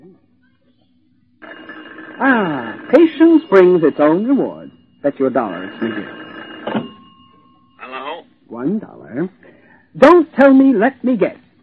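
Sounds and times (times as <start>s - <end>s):
telephone ringing: 1.4s - 8.5s
speech: 2.2s - 6.9s, 8.6s - 9.4s, 10.0s - 11.4s.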